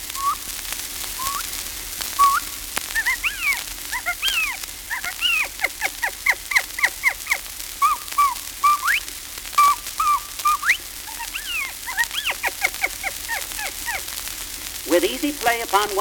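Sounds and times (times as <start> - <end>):
California mountain quail calling with whistled notes: 0.2 - 0.4, 1.2 - 1.5, 2.2 - 14.2
speech: 15.4 - 16.0.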